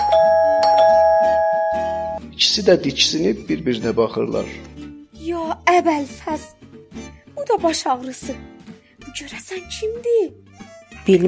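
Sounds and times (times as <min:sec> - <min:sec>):
doorbell ringing loudly: 0:00.0 - 0:02.2
speech: 0:02.5 - 0:04.7, 0:05.7 - 0:06.6, 0:07.4 - 0:08.5, 0:09.1 - 0:11.2.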